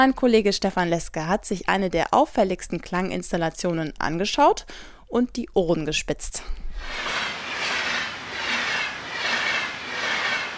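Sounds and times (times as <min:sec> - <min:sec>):
speech: 0:00.0 - 0:07.4
train rattling past railway level crossing: 0:06.8 - 0:10.5.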